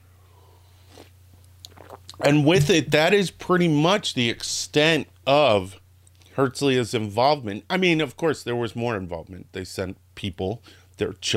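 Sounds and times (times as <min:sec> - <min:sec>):
steady low electrical hum: 0:00.0 - 0:11.3
slurping sip of a drink: 0:00.9 - 0:02.9
speech: 0:02.2 - 0:05.8, 0:06.4 - 0:11.3.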